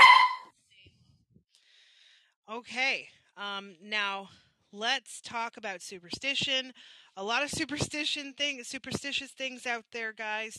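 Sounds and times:
dog barking excitedly: 0.0s - 0.4s
speech: 2.6s - 10.5s.

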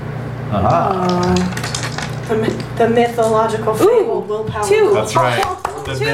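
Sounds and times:
person murmuring: 0.5s - 1.6s
speech: 0.5s - 1.7s, 2.3s - 6.1s
dice rolling on a table: 0.9s - 2.8s.

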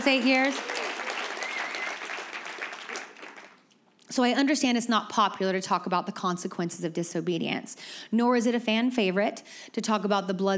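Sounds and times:
speech: 0.0s - 0.8s, 4.2s - 10.5s
crowd applauding: 0.0s - 3.6s.

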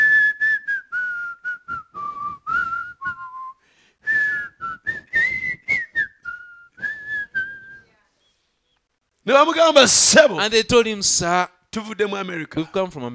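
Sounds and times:
policeman in England whistling a lilting melody: 0.0s - 7.9s
speech: 9.3s - 13.1s.

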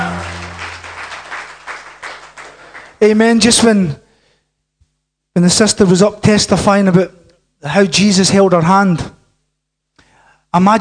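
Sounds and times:
low hum: 0.0s - 2.7s
church worship team applause: 0.0s - 3.2s
speech: 3.0s - 4.0s, 5.4s - 9.2s, 10.5s - 10.7s.

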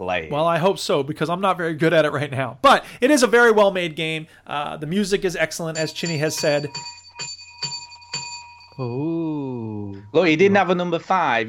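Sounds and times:
speech: 0.0s - 7.0s, 8.8s - 11.4s
bell ringing with bright metallic strikes: 5.7s - 9.0s.

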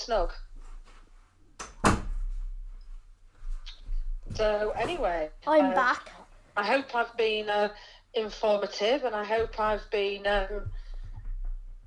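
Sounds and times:
speech: 0.0s - 0.5s, 4.4s - 10.8s
door shutting with a thud: 1.6s - 2.4s.

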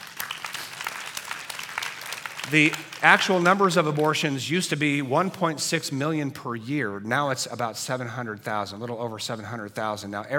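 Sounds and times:
audience applause: 0.0s - 4.2s
speech: 2.5s - 10.3s.

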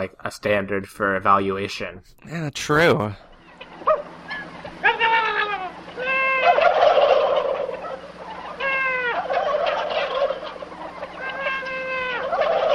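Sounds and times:
speech: 0.0s - 3.3s
steady low hum: 0.0s - 12.7s
turkeys gobbling: 3.3s - 12.7s.

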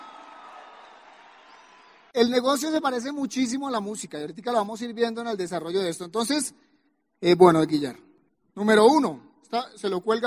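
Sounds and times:
audience applause for a guest called up to help: 0.0s - 2.1s
speech: 2.2s - 10.2s.

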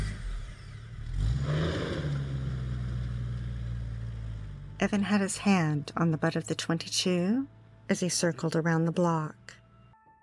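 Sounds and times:
car engine revving and roaring as it accelerates away: 0.0s - 6.3s
speech: 4.8s - 9.6s.

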